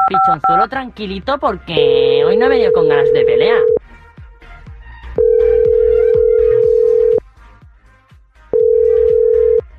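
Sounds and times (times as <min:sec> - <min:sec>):
speech: 0:00.1 - 0:03.7
steady thumping music beat: 0:00.3 - 0:09.7
steady electronic telephone ringback tone: 0:01.8 - 0:03.8, 0:05.2 - 0:07.2, 0:08.6 - 0:09.6.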